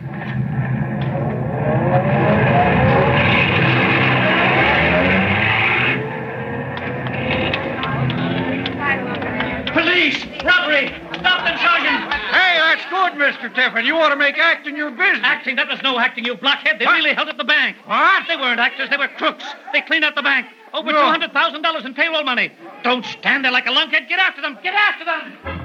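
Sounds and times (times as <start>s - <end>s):
getaway car engine starting and revving as it pulls away: 0.0s - 12.4s
voices: 0.0s - 25.6s
laughter: 1.6s - 17.1s, 17.9s - 21.9s
speech: 13.6s - 25.6s.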